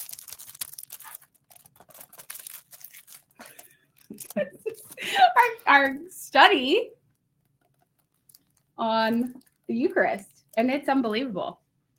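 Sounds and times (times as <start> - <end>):
wrapping paper tearing and crinkling off a book: 0.0 - 4.8
speech: 4.2 - 4.8, 5.4 - 7.0, 8.8 - 11.6.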